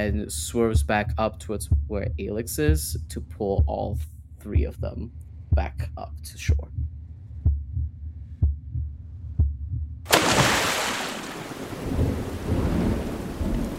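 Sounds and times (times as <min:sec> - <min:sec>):
speech: 0:00.0 - 0:06.9
low rumbling thuds of thunder over a coastal area: 0:00.8 - 0:13.7
loud steady rain over a coastal area: 0:10.1 - 0:13.7
sharp crack of thunder over a coastal area: 0:10.1 - 0:13.7.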